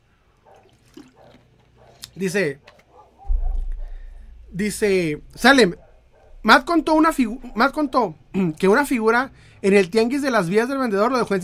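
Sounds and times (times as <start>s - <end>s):
person gulping water close to the microphone: 0.6s - 2.2s
speech: 2.2s - 2.7s, 4.5s - 5.8s, 6.4s - 11.4s.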